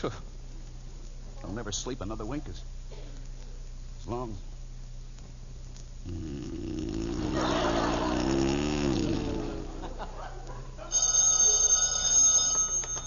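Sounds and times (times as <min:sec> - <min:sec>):
speech: 0:00.0 - 0:00.3, 0:01.4 - 0:02.8, 0:04.0 - 0:04.5, 0:06.0 - 0:06.4
drawn-out falling vocal sound: 0:06.0 - 0:10.0
laughter: 0:07.1 - 0:11.0
telephone ringing: 0:10.9 - 0:13.0.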